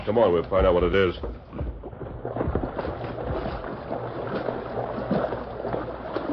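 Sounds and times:
speech: 0:00.0 - 0:01.7
person wading through hip-deep stream: 0:00.6 - 0:06.3.

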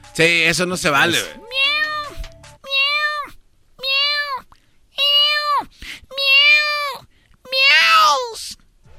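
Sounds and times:
speech: 0:00.2 - 0:01.8
cat meowing: 0:01.4 - 0:08.5.

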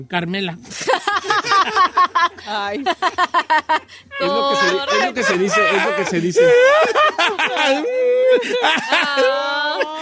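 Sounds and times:
speech: 0:00.0 - 0:10.0
laughter: 0:00.7 - 0:10.0
person mock crying like a whimpering child: 0:04.1 - 0:10.0.

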